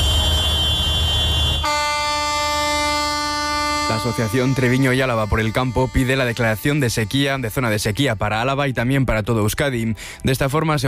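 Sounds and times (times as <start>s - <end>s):
dozens of tractor horns blaring at a farmers' drought protest in Vitoria: 0.0s - 8.2s
speech: 4.0s - 10.8s.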